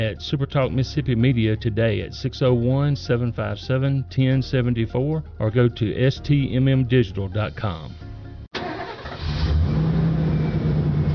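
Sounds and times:
speech: 0.1 - 8.0
new truck engine cranking, starting and revving: 8.5 - 11.1.

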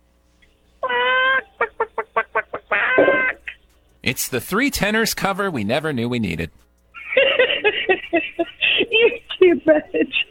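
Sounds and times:
high-pitched voice imitating chicken clucking and squawking: 0.8 - 3.6
speech: 4.0 - 6.6, 8.1 - 10.2
laughter: 7.0 - 10.3.

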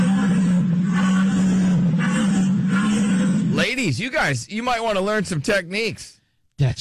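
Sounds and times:
deer call droning through a long cylindrical call blown by a hunter: 0.0 - 3.8
speech: 3.9 - 6.7.

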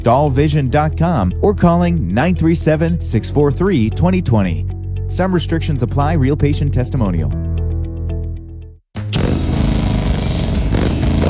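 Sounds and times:
speech: 0.0 - 7.5
Harley motorcycle engine idling and revving: 9.0 - 11.2.

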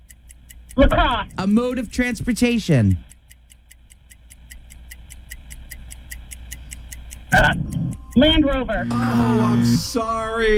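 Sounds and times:
game timer ticking in a word game: 0.0 - 10.0
speech: 0.8 - 3.1, 7.4 - 10.5
low hum: 6.5 - 10.5
loud buzzer-like blast as the clock runs out: 8.8 - 10.2.

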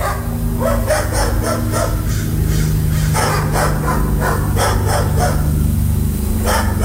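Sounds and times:
neighbor's dogs barking: 0.0 - 6.8
steady low hum: 0.0 - 6.8.

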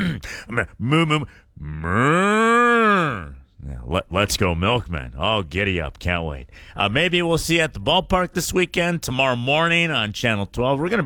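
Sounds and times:
speech: 0.4 - 2.4, 3.1 - 11.0
person imitating a cow mooing: 1.6 - 3.5.

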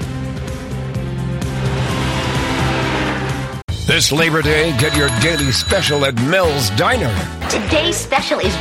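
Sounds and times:
Indy race car engine roaring at speed: 0.7 - 3.6
speech: 3.9 - 8.6.

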